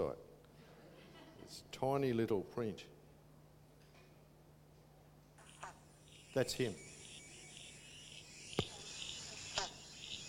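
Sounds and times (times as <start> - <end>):
speech: 0.0 - 0.3, 1.5 - 3.0, 6.3 - 6.9
banjo frog bonk calls at a dam: 5.4 - 10.2
chorus of chirping insects: 5.4 - 10.2.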